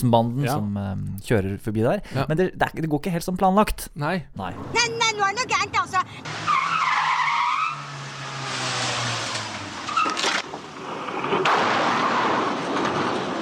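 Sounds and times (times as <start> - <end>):
speech: 0.0 - 7.1
car engine noise: 4.5 - 13.3
car tyres screeching in a long skid in a film stunt: 5.7 - 13.3
rumbling roar of impact debris: 8.1 - 13.3
loud metallic crashes and scraping of a car cut in two: 8.3 - 13.3.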